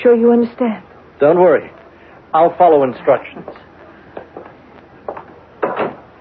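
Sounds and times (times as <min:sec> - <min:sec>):
speech: 0:00.0 - 0:03.7
door handled with short wooden knocks and rattles: 0:05.1 - 0:06.1
door shutting with a full clunk: 0:05.6 - 0:06.1.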